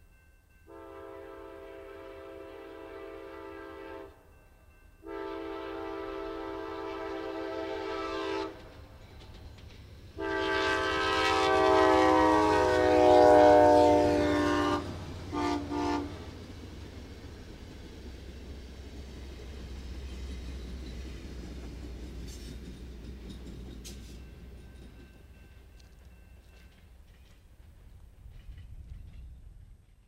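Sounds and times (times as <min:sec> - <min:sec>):
passing passenger train's multi-chime K5LA air horn: 0:00.7 - 0:04.2, 0:05.0 - 0:08.7, 0:10.2 - 0:16.3.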